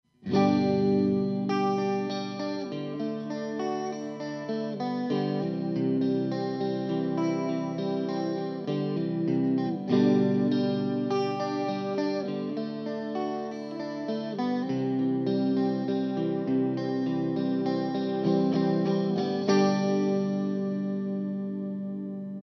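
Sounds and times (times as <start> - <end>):
guitar intro: 0.0 - 22.4.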